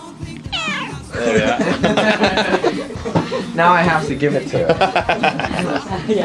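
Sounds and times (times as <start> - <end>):
cat meowing for wet food: 0.5 - 1.1
laughter: 1.1 - 6.2
speech: 1.2 - 2.7, 3.4 - 6.2.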